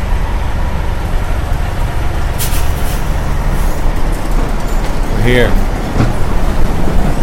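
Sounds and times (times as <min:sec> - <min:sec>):
large city bus engine idling and pulling up: 0:00.0 - 0:07.2
city bus air brakes hissing: 0:02.3 - 0:04.0
speech: 0:05.3 - 0:06.2.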